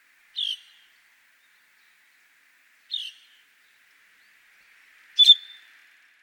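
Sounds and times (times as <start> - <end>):
Asian glossy starling calling on Ishigaki: 0.4 - 0.9, 2.9 - 3.4, 5.2 - 5.6.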